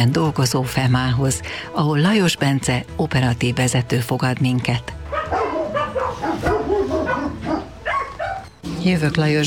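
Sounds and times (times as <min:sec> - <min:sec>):
speech: 0:00.0 - 0:05.0, 0:08.8 - 0:09.4
large dog barking during an animal rescue call: 0:05.1 - 0:08.5.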